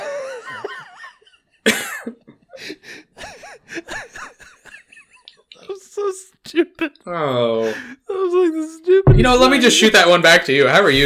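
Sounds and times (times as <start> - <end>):
laughter: 0.0 - 6.9
loud cough: 1.6 - 2.2
speech: 7.1 - 7.9, 9.3 - 11.0.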